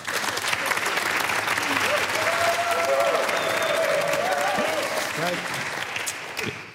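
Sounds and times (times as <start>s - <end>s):
live audience applauding: 0.0s - 6.7s
faint voices and cheers: 1.7s - 5.4s.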